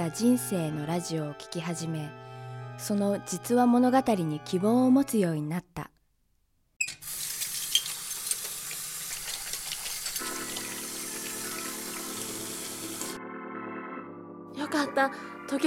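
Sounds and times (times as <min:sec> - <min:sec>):
speech: 0:00.0 - 0:06.0
tap water running while washing dishes: 0:06.9 - 0:13.2.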